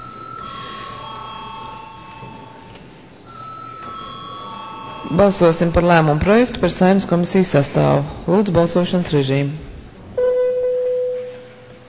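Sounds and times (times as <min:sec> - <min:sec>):
electric bell ringing in parliament chamber to call a vote: 0:00.0 - 0:06.2, 0:10.2 - 0:11.8
speech: 0:05.1 - 0:09.6.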